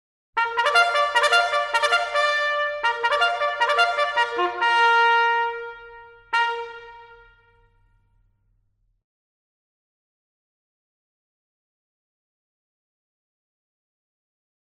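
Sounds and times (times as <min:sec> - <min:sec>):
band playing a ceremonial bugle call and stinger: 0:00.4 - 0:07.5.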